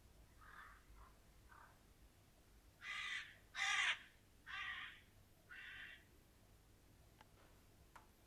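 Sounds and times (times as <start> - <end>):
flock of crows cawing outside a window: 0.4 - 1.8, 2.8 - 6.1.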